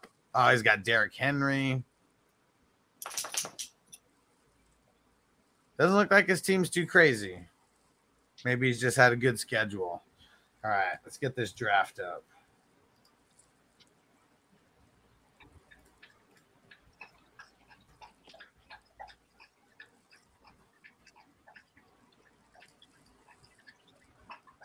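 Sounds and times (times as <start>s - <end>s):
speech: 0.4s - 1.9s, 5.8s - 7.5s, 8.4s - 12.3s
pit bull dog lapping water: 15.4s - 24.6s.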